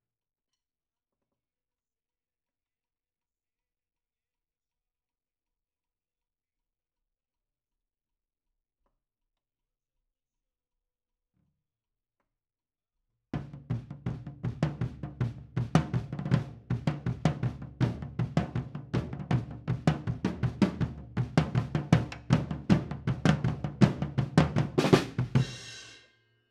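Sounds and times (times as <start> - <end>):
drum kit playing at 160 BPM: 13.4 - 26.0.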